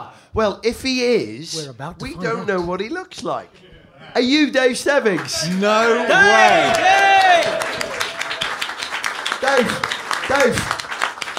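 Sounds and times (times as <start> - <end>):
speech: 0.0 - 7.8, 9.5 - 10.8
person calling out: 2.0 - 2.6
live audience applause: 5.0 - 11.3.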